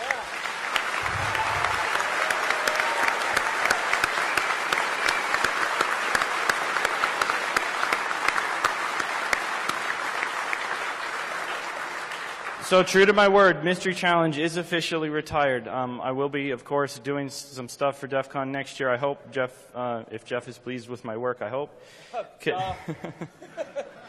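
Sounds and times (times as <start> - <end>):
large audience applauding: 0.0 - 13.3
speech: 12.7 - 23.4
laughter: 22.6 - 24.0.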